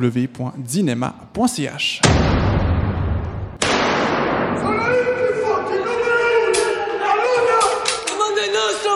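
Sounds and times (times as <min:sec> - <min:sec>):
speech: 0:00.0 - 0:02.6
loud gunshots from a film excerpt: 0:02.0 - 0:05.8
shouting voices in a battle scene: 0:04.6 - 0:08.8.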